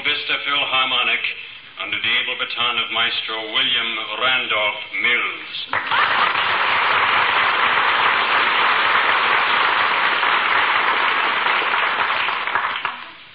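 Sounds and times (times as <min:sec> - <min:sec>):
speech: 0:00.3 - 0:06.6
large audience applauding an orchestra conductor: 0:05.7 - 0:13.2.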